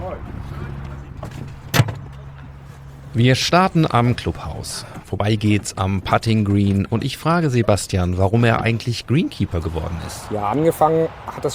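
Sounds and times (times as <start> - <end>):
golf cart motor hum: 0.2 - 4.6
loud thud: 1.2 - 2.2
speech: 3.2 - 11.5.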